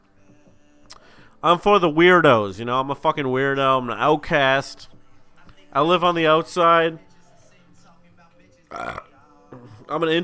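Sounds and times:
speech: 0:01.4 - 0:04.9, 0:05.7 - 0:07.1, 0:08.7 - 0:09.1, 0:09.9 - 0:10.2
loud burp: 0:08.7 - 0:10.0.

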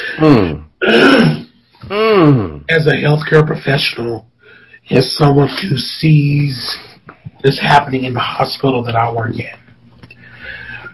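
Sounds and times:
person with a dry throat clearing throat: 0:00.0 - 0:02.7
speech: 0:00.2 - 0:01.4, 0:02.7 - 0:09.6.

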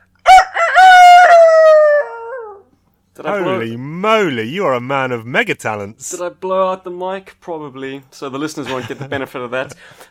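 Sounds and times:
man imitating a rooster crowing: 0:00.2 - 0:02.7
speech: 0:03.2 - 0:10.0
laughter: 0:08.6 - 0:10.0.

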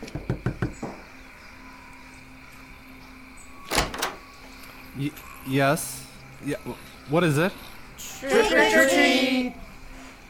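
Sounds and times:
heavy thuds of a door being handled or opened: 0:03.7 - 0:04.3
speech: 0:05.0 - 0:09.6.

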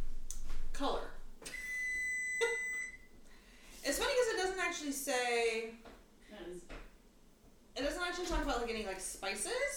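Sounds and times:
speech: 0:00.8 - 0:01.2, 0:04.8 - 0:06.8, 0:07.8 - 0:09.7
kitchen timer electronic beep: 0:01.5 - 0:03.1.

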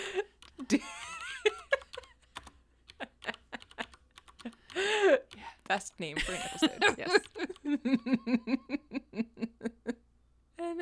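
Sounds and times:
laughter-like vocal sounds: 0:00.0 - 0:02.3, 0:02.9 - 0:05.2, 0:06.2 - 0:10.0
speech: 0:00.2 - 0:00.9, 0:05.7 - 0:09.3
rapid typing on a computer keyboard: 0:00.2 - 0:07.9.

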